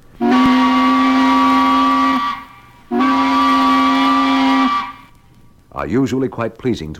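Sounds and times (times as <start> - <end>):
long loud brassy tugboat whistle blasts: 0.2 - 5.1
speech: 5.8 - 6.9.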